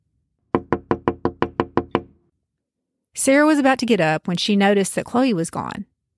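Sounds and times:
soft quick raps on a front door: 0.5s - 2.2s
speech: 3.2s - 5.9s.

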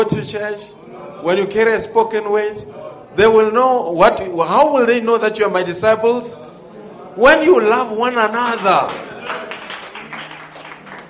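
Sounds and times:
speech: 0.0s - 6.5s, 7.2s - 9.4s
crowd applauding: 8.3s - 11.0s.

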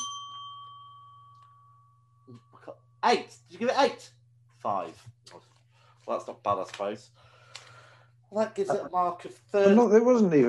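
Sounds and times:
bell rung to reveal scores: 0.0s - 2.6s
steady low hum: 0.0s - 6.4s
speech: 2.3s - 5.5s, 6.1s - 7.2s, 8.3s - 10.4s.

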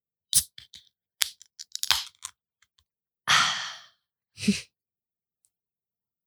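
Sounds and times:
beverage can cracked open: 0.4s - 2.3s
speech: 4.4s - 4.7s.

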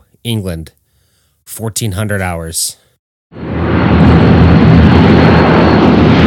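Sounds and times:
speech: 0.2s - 0.8s, 1.5s - 3.4s
propeller warplanes landing at a US Army Air Force station in England: 3.4s - 6.2s.

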